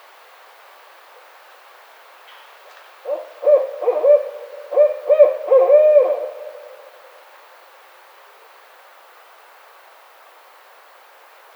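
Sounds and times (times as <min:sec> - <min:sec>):
barred owl hooting: 0:03.1 - 0:07.1.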